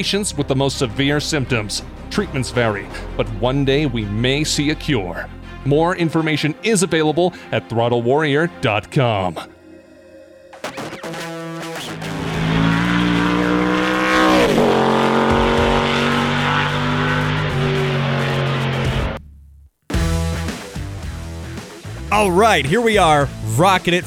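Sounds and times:
racing car engine roaring, revving and shifting: 0:00.0 - 0:04.6, 0:10.6 - 0:19.2
speech: 0:00.0 - 0:09.5, 0:22.2 - 0:24.0
sharp tire squeals: 0:12.0 - 0:19.2.

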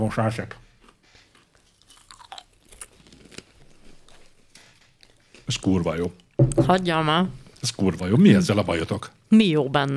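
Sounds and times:
speech: 0:00.0 - 0:00.7, 0:05.5 - 0:09.9
crunchy chewing right at the microphone: 0:00.5 - 0:06.4.

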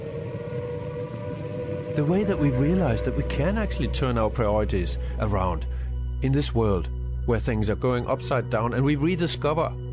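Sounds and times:
air raid siren wailing: 0:00.0 - 0:05.7
low rumbling undertone: 0:00.0 - 0:09.9
speech: 0:02.0 - 0:09.8.

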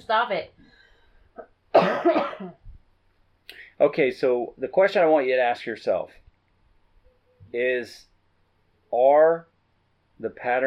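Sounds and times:
speech: 0:00.0 - 0:00.6, 0:01.4 - 0:02.6, 0:03.8 - 0:06.2, 0:07.5 - 0:08.1, 0:08.9 - 0:09.5, 0:10.2 - 0:10.6
person coughing: 0:01.8 - 0:02.6.

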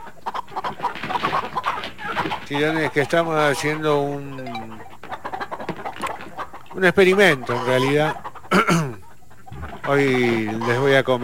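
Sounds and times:
hens clucking: 0:00.0 - 0:11.2
speech: 0:02.5 - 0:04.7, 0:06.8 - 0:09.0, 0:09.9 - 0:11.2.

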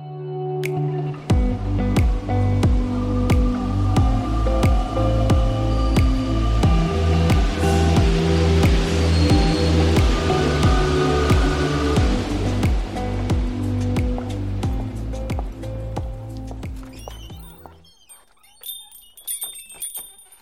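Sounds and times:
low rumbling hum: 0:01.3 - 0:17.6
rain on a city street in Brussels: 0:04.1 - 0:15.1.

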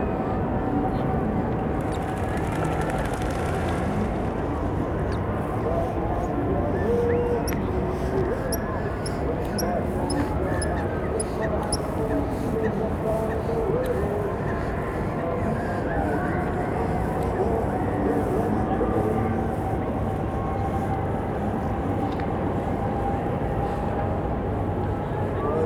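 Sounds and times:
distant funfair crowd voices across a lake in a city park: 0:00.0 - 0:25.6
mid-pitched funfair ride machinery hum: 0:01.4 - 0:21.4.

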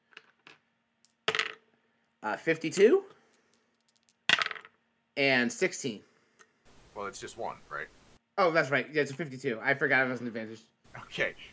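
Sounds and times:
D100 dice clattering across a hard tabletop: 0:00.0 - 0:01.8, 0:02.7 - 0:04.8
speech: 0:02.2 - 0:03.2, 0:05.2 - 0:06.1, 0:07.0 - 0:11.5.

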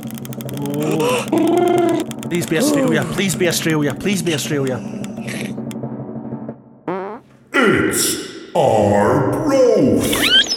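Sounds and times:
prize wheel being spun, rapid even ticking: 0:00.0 - 0:05.0
speech: 0:02.3 - 0:05.4, 0:07.9 - 0:10.4.

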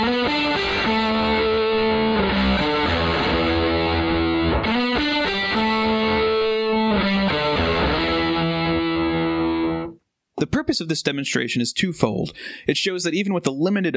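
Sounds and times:
electric guitar through an octave pedal with boost: 0:00.0 - 0:10.0
speech: 0:10.6 - 0:13.9.

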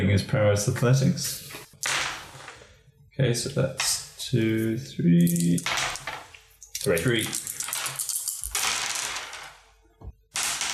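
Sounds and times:
speech: 0:00.1 - 0:02.0, 0:03.2 - 0:05.9, 0:06.8 - 0:07.4
dice rattling across a table during a tabletop role-playing game: 0:01.8 - 0:02.6, 0:05.2 - 0:09.7, 0:10.3 - 0:10.7.

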